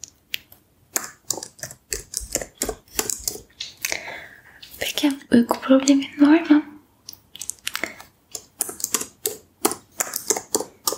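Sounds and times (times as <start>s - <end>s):
typing on a laptop keyboard in an ASMR session: 1.0s - 3.5s, 7.4s - 10.9s
speech: 5.0s - 6.6s.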